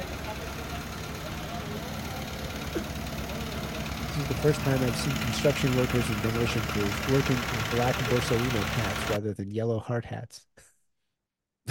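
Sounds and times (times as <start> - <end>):
cement truck engine idling with a deep rumble: 0.0 - 9.2
speech: 4.2 - 10.6.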